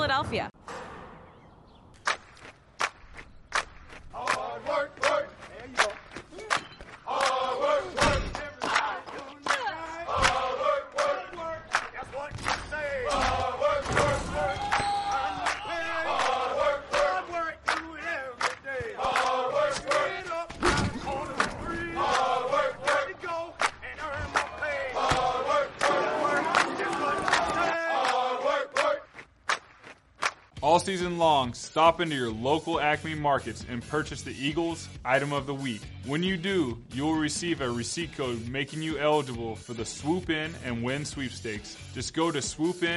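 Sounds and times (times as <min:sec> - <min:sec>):
speech: 0:00.2 - 0:00.6, 0:31.4 - 0:42.9
rhythmic thumps and stomping footsteps: 0:02.0 - 0:30.9
sports fans chanting and shouting on a train: 0:03.9 - 0:29.3.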